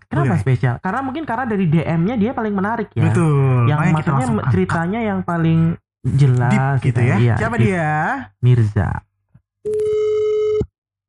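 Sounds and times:
speech: 0.2s - 10.1s
electronic phone ringing tone: 9.7s - 10.7s.

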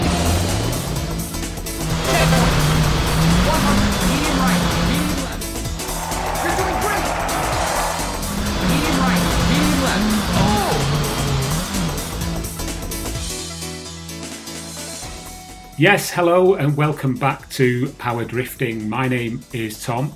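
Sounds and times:
rally car engine roar with gear changes in a racing video game: 0.0s - 13.2s
speech: 15.8s - 20.1s.

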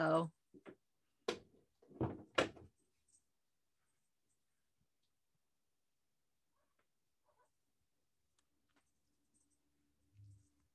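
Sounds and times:
speech: 0.0s - 0.4s
soft knocks on a door: 1.3s - 2.6s.

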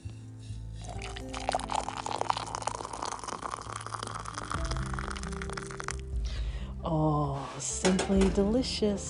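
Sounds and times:
hot water pouring from a kettle into a cup: 0.8s - 6.2s
speech: 6.9s - 9.0s.

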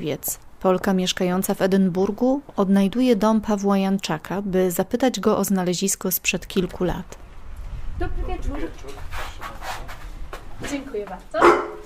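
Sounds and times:
speech: 0.0s - 7.2s, 8.0s - 9.3s, 10.6s - 11.8s
dog barking at a house in Edinburgh: 11.4s - 11.8s.

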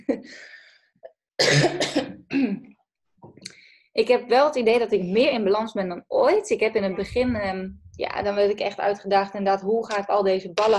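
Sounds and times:
person coughing harshly: 1.4s - 2.7s
speech: 1.4s - 2.7s, 4.0s - 10.7s.

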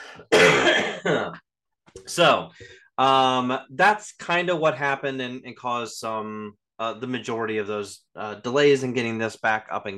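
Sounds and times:
person coughing harshly: 0.0s - 1.4s
person clearing throat: 0.2s - 1.4s
speech: 0.2s - 1.4s, 2.0s - 9.9s.

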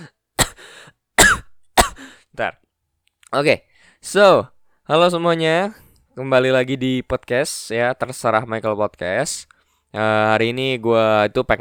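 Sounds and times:
person coughing: 0.0s - 2.1s
speech: 2.4s - 2.6s, 3.3s - 11.5s.

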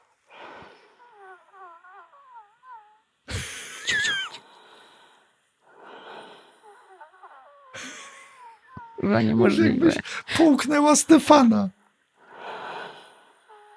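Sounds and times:
person deliberately producing raspy wheezing breaths from the bronchi: 0.2s - 9.0s, 9.9s - 10.3s, 12.2s - 13.7s
speech: 9.0s - 11.8s.

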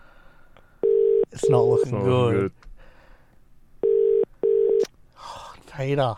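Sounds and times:
telephone ringback tone on an outgoing call: 0.8s - 1.9s, 3.8s - 4.8s
speech: 1.4s - 2.6s, 5.8s - 6.1s.

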